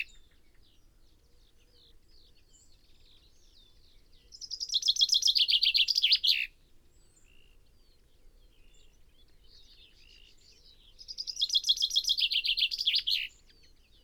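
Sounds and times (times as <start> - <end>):
common chaffinch singing a cascade of notes: 2.7 - 6.6, 9.6 - 14.0.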